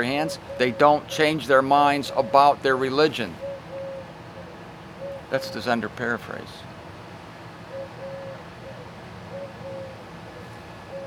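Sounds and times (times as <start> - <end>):
pigeon or dove cooing: 0.0 - 2.6, 3.2 - 5.7, 7.7 - 11.0
speech: 0.0 - 3.4, 5.3 - 6.7
steady hiss and rumble: 0.0 - 11.0.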